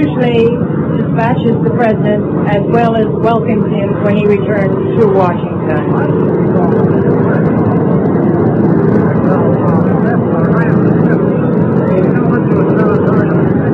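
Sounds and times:
army helicopter landing with engine and rotors roaring: 0.0 - 13.7
speech: 0.1 - 7.8.

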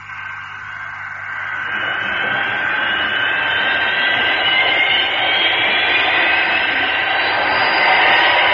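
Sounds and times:
jet airliner engines roaring during takeoff: 0.0 - 8.5.

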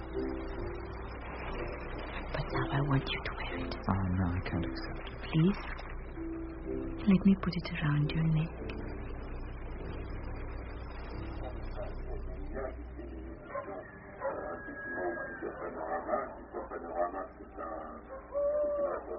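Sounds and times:
low rumbling background: 0.0 - 19.1
speech: 2.7 - 5.8, 6.7 - 8.8
owl hooting: 13.5 - 19.1.

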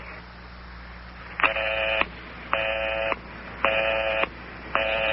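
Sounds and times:
telephone busy signal after dialing a number: 1.5 - 5.1.

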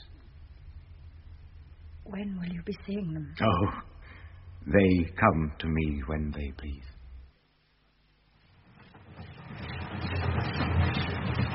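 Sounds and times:
speech: 2.1 - 3.9, 4.6 - 6.9
train rumbling along rails: 9.0 - 11.5.

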